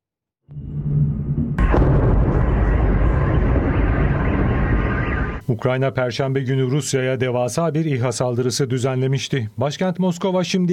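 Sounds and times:
shoulder-fired rocket launched at a drone roaring: 1.2s - 5.4s
sharp bright blast: 1.6s - 5.4s
speech: 5.5s - 10.7s.

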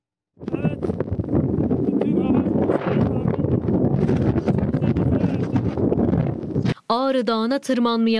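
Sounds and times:
strong wind of a summer snowstorm buffeting a mobile phone microphone on a mountain: 0.3s - 6.8s
speech: 7.1s - 8.1s.

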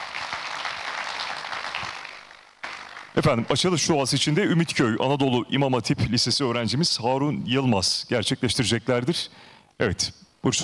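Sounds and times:
audience applause at an official ceremony: 0.0s - 3.2s
speech: 3.2s - 10.6s.

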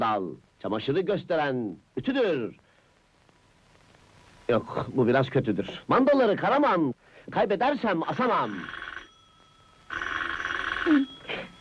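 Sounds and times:
speech: 0.0s - 2.6s, 4.5s - 8.8s, 10.8s - 11.1s
faint steady tone: 1.7s - 11.5s
telephone ringing: 7.9s - 11.5s.

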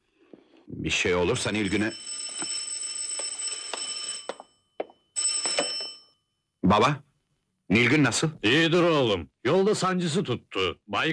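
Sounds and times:
speech: 0.7s - 2.2s, 6.7s - 7.1s, 7.7s - 11.1s
telephone ringing with an electronic trill: 1.3s - 6.4s.

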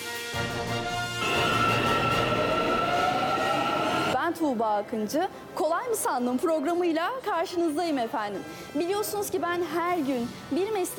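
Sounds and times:
train electric whine: 1.2s - 4.2s
train pulling out of a station: 1.2s - 4.2s
speech: 4.4s - 10.9s.

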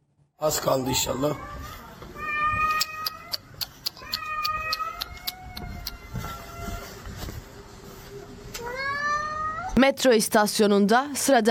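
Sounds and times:
faint noise: 0.0s - 11.4s
speech: 0.4s - 1.8s, 9.8s - 11.4s
cat with paw trapped in an escalator meowing in pain: 0.8s - 7.0s, 8.6s - 9.8s
sharp clicks: 2.8s - 6.0s.

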